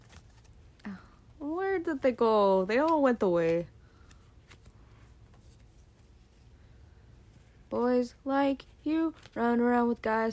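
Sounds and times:
tarot cards being shuffled: 0.0s - 0.9s, 2.7s - 6.5s, 8.6s - 9.4s
faint low hum: 0.0s - 10.3s
speech: 1.8s - 3.8s, 7.7s - 10.3s.

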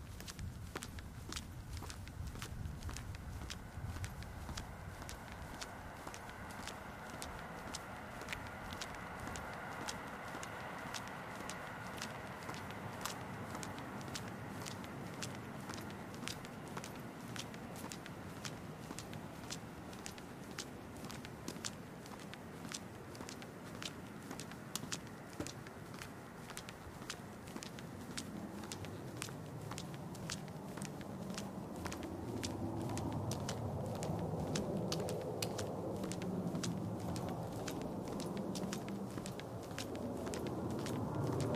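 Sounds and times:
dense steady patter of sharp ticks and crackles on a walk home: 0.2s - 41.5s.

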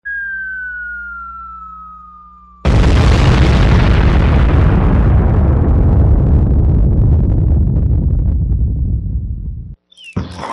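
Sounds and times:
bomb-drop sound effect descending whistle: 0.0s - 2.7s
bomb-drop sound effect explosive boom: 2.6s - 9.8s.

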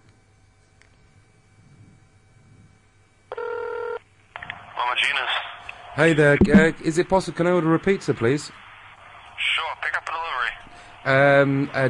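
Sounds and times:
faint hum: 0.0s - 11.8s
loud steady electronic telephone tone: 3.3s - 4.0s
speech: 6.0s - 8.6s, 11.1s - 11.8s.

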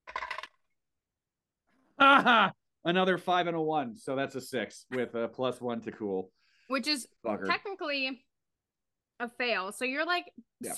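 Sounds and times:
dice dropped and rolling on a hard table: 0.0s - 0.6s
speech: 2.0s - 8.3s, 9.2s - 10.7s.

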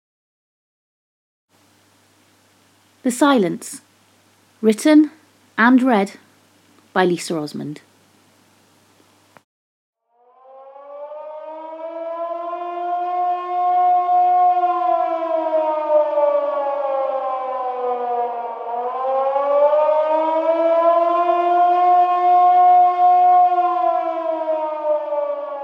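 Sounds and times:
speech: 3.0s - 3.8s, 4.6s - 6.2s, 6.9s - 7.9s
air raid siren wailing in London during the Blitz: 10.1s - 25.6s.

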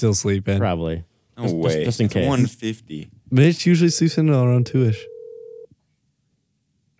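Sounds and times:
speech: 0.0s - 5.1s
quiet hum: 0.0s - 6.9s
steady electronic phone dialing tone: 5.0s - 5.7s.

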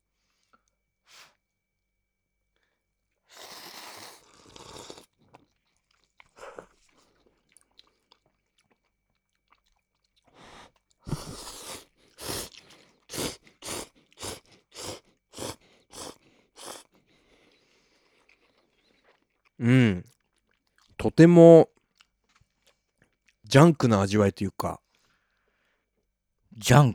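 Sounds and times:
person slurping and chewing Kyushu-style cup noodles: 3.4s - 5.2s, 11.1s - 16.9s
speech: 19.6s - 20.1s, 21.1s - 21.7s, 23.5s - 24.8s, 26.6s - 26.9s.

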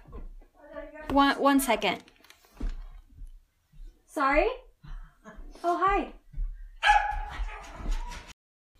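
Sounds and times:
speech: 1.1s - 2.1s, 4.2s - 4.6s, 5.6s - 6.2s
puppy barking: 6.8s - 8.1s.

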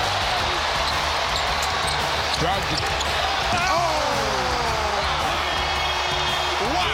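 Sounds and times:
arena crowd roaring at a basketball slam dunk: 0.0s - 6.9s
sneakers squeaking on the court: 0.6s - 3.2s
speech: 2.4s - 3.9s.

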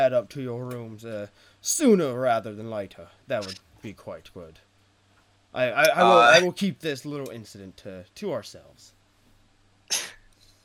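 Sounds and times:
speech: 0.0s - 4.7s, 5.5s - 9.0s
human voice imitating the bark of a small Pomeranian dog: 5.8s - 6.4s.

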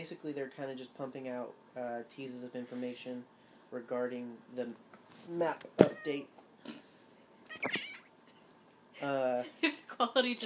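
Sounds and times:
speech: 0.0s - 6.8s, 7.6s - 7.9s, 9.0s - 10.4s
cat meowing after stepping on an iPad: 5.8s - 6.3s, 7.5s - 8.1s.

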